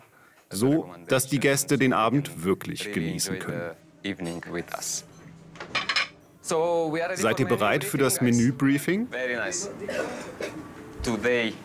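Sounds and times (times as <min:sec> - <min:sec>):
speech: 0:00.5 - 0:05.1, 0:06.5 - 0:11.6
plates and cutlery clinking as a table is set for an elegant dinner: 0:04.1 - 0:06.3.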